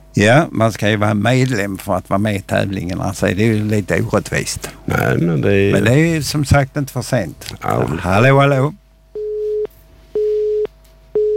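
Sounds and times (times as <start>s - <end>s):
speech: 0.2s - 8.8s
telephone busy-signal beeps after the caller hung up: 9.2s - 11.3s.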